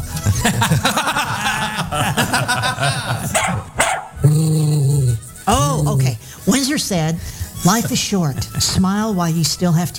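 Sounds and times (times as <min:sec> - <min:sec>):
laughter: 0:00.0 - 0:05.4, 0:07.6 - 0:09.2
dog barking and yipping: 0:03.3 - 0:04.2
dog whining: 0:03.3 - 0:05.0
speech: 0:06.8 - 0:09.9.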